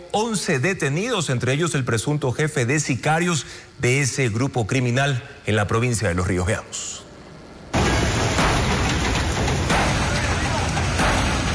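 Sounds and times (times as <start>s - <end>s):
speech: 0.1s - 7.0s
heavy rain in Quevedo, Los Ríos: 7.8s - 11.5s.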